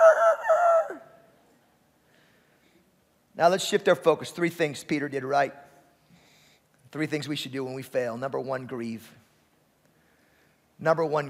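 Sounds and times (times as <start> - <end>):
rooster crowing: 0.0 - 1.1
speech: 3.4 - 5.7, 6.9 - 9.2, 10.8 - 11.2.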